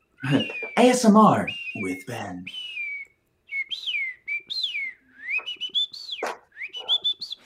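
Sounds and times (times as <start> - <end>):
person whistling an imitation of bird calls: 0.1 - 7.4
speech: 0.2 - 2.7.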